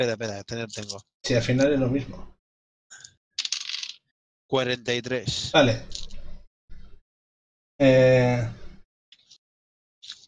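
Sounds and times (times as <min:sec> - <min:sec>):
speech: 0:00.0 - 0:03.1, 0:04.5 - 0:06.0, 0:07.8 - 0:08.6
percentile dice rolling on a hard tabletop: 0:03.4 - 0:04.0.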